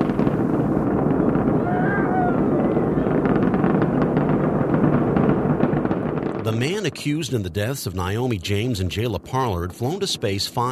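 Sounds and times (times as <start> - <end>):
Space Shuttle Atlantis rocket engines roaring at liftoff: 0.0 - 4.2, 6.4 - 10.7
Space Shuttle Atlantis rocket engine crackle at liftoff: 0.0 - 10.7
speech: 6.5 - 10.7.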